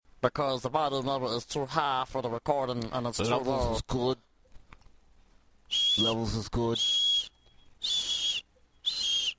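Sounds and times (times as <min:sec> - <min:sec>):
speech: 0:00.2 - 0:04.3, 0:05.7 - 0:07.0
fake dog whistle blasts: 0:05.7 - 0:09.3.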